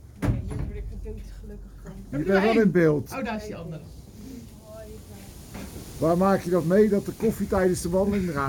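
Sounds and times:
door opening with a solid thud: 0.2s - 1.0s
speech: 1.1s - 4.0s, 6.0s - 8.4s.

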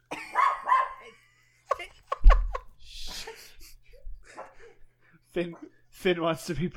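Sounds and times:
dog barking and yelping: 0.2s - 1.2s
laughter: 1.0s - 4.8s
speech: 5.4s - 6.7s.

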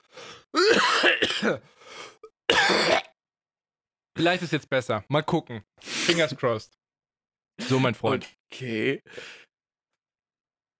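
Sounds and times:
person clearing throat: 0.6s - 1.6s, 2.5s - 3.2s
person coughing: 0.6s - 1.7s, 2.5s - 3.2s, 6.1s - 6.4s
speech: 0.7s - 3.1s, 4.2s - 6.8s, 7.6s - 9.4s.

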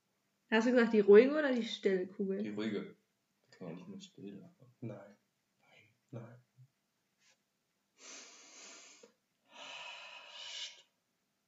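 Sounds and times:
speech: 0.5s - 3.0s, 3.6s - 5.2s, 6.1s - 6.4s
heavy snorting inhale through the nose: 8.0s - 10.8s.

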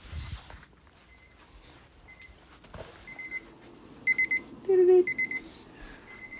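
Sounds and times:
low hum: 0.0s - 6.3s
oven timer beeping for a finished frozen pizza: 1.1s - 1.4s, 2.1s - 6.3s.

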